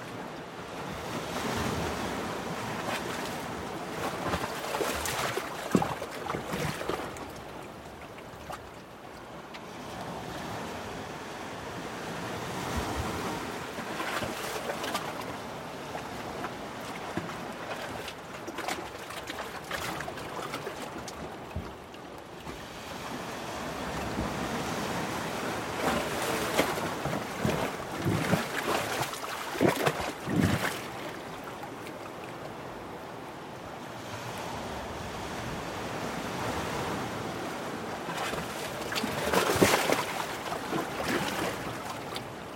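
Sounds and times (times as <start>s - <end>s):
steady wash of surf: 0.0s - 8.9s, 9.8s - 42.5s
sharp seawater splashes and glugs: 0.8s - 10.2s, 12.6s - 33.3s, 36.8s - 42.5s
seawater sloshing and gurgling in a small rocky coastal hollow: 3.9s - 8.4s, 26.0s - 31.5s, 38.1s - 42.5s.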